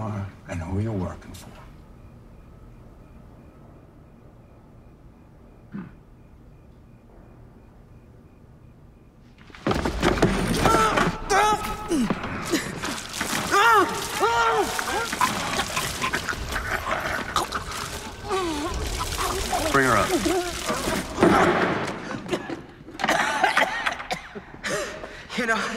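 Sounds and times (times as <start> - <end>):
speech: 0.5 - 1.7
person sputtering, coughing and gasping during waterboarding: 5.7 - 6.0, 23.0 - 24.9
water pouring over a face during waterboarding: 9.6 - 22.1.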